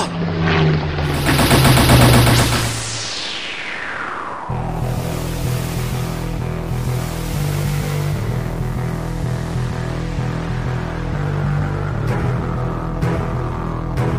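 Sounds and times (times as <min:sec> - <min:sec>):
low steady rumble: 0:00.0 - 0:14.1
roaring engine with sharply falling pitch: 0:00.0 - 0:14.1
machine gun fire from a strafing run: 0:01.0 - 0:03.0.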